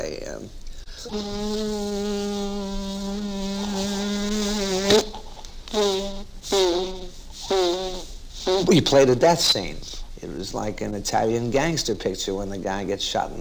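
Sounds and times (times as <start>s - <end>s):
speech: 0.0s - 3.2s, 4.9s - 5.2s, 8.7s - 13.3s
actor imitating a mosquito with a nasal buzzing whine: 1.0s - 8.9s.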